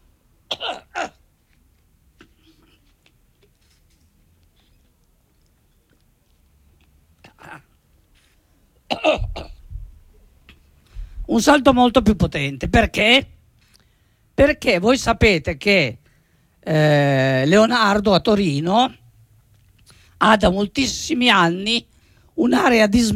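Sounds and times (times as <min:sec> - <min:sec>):
person coughing: 0:00.5 - 0:01.2, 0:08.9 - 0:09.6
speech: 0:11.4 - 0:13.4, 0:14.4 - 0:16.0, 0:16.6 - 0:19.0, 0:20.2 - 0:23.1.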